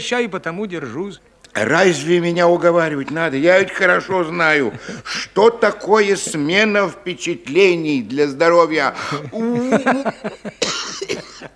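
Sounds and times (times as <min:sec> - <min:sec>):
speech: 0:00.0 - 0:11.5
laughter: 0:04.1 - 0:06.8, 0:09.0 - 0:11.5
man coughing: 0:09.0 - 0:11.5.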